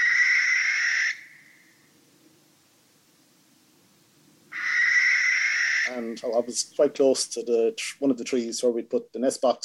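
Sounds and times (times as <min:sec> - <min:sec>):
barn owl screeching and hissing: 0:00.0 - 0:01.8, 0:04.5 - 0:06.2
speech: 0:05.9 - 0:09.6.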